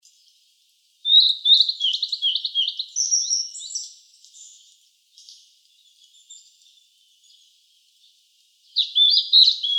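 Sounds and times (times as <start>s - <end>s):
Blue-and-white flycatcher warbled whistled song: 1.1s - 4.6s, 8.8s - 9.7s.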